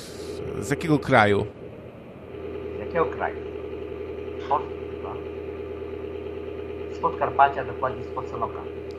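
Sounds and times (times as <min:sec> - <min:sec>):
engine or tractor idling: 0:00.0 - 0:08.9
speech: 0:00.6 - 0:01.6, 0:02.9 - 0:03.6, 0:04.5 - 0:05.4, 0:07.0 - 0:08.8.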